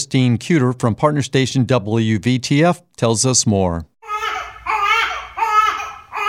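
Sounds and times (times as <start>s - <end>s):
speech: 0.0s - 4.5s
newborn baby girl crying: 4.0s - 6.2s.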